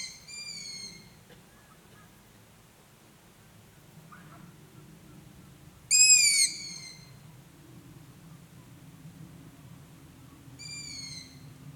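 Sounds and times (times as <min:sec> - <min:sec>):
Long-eared owl giving high squeaky drawn-out calls: 0:00.0 - 0:01.1, 0:05.9 - 0:07.0, 0:10.6 - 0:11.4
faint low background noise: 0:00.0 - 0:11.7.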